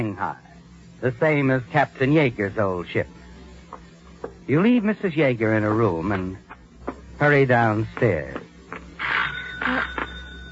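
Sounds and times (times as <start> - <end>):
speech: 0.0 - 3.2, 4.5 - 6.4, 7.2 - 8.5
doorbell ringing: 9.2 - 10.4.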